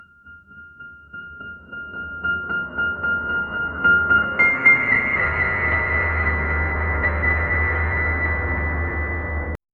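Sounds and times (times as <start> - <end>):
soft piano: 0.0 - 9.6
rising drone: 3.6 - 9.6.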